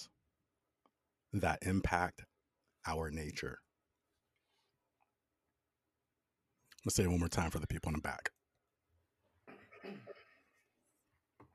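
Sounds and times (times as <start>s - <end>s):
speech: 1.3s - 3.6s, 6.8s - 8.4s
harsh cough: 9.4s - 10.6s.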